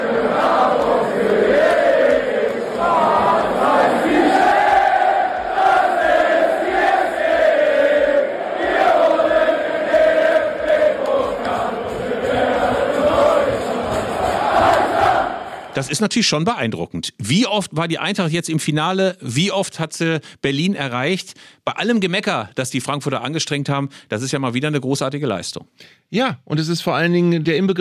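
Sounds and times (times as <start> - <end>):
football fans chanting in the catacombs of a stadium in Stuttgart, Germany: 0.0 - 15.8
speech: 15.8 - 27.7.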